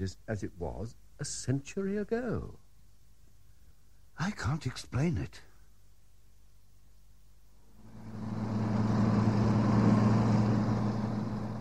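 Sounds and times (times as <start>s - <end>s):
speech: 0.0s - 2.6s, 4.2s - 5.5s
car engine droning while driven fast: 7.8s - 11.5s.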